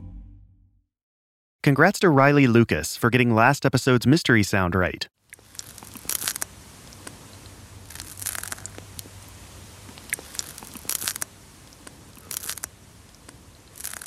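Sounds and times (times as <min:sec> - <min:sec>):
speech: 0:01.6 - 0:05.2
faint steady background: 0:01.6 - 0:14.0
snail eating a piece of lettuce in an anechoic chamber: 0:05.2 - 0:14.0.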